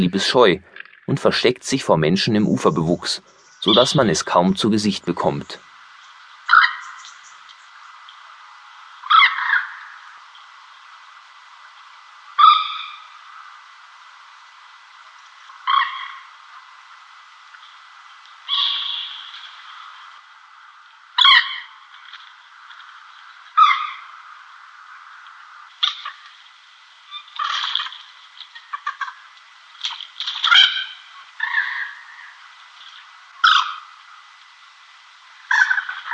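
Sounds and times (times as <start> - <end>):
speech: 0.0 - 5.7
common moorhen calls: 2.2 - 8.0, 9.0 - 10.2, 12.3 - 13.5, 15.5 - 16.7, 18.4 - 20.0, 21.2 - 21.8, 23.5 - 26.3, 28.5 - 29.3, 30.4 - 34.0, 35.4 - 36.1.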